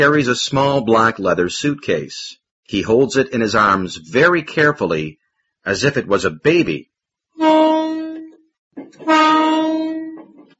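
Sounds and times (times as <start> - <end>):
speech: 0.0 - 7.6
loud train horn blasts: 7.4 - 8.4, 9.0 - 10.3.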